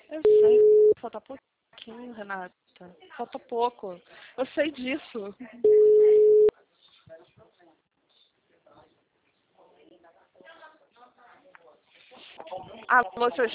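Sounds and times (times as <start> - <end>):
speech: 0.2 - 6.2, 12.1 - 13.5
phone line tone after a dropped call: 0.3 - 1.0, 5.7 - 6.5.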